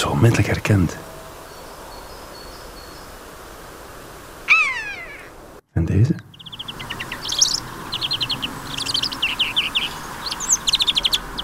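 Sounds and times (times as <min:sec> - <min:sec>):
speech: 0:00.1 - 0:01.1, 0:06.0 - 0:06.3
European greenfinch singing chirps and trills: 0:01.4 - 0:03.2, 0:04.5 - 0:05.3, 0:06.2 - 0:11.4.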